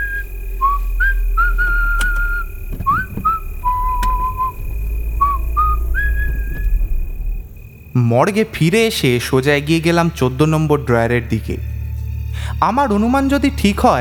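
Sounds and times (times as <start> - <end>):
person whistling a tune while walking back to a car: 0.0 - 6.9
steady low rumble: 0.0 - 14.0
speech: 8.0 - 11.7, 12.6 - 14.0.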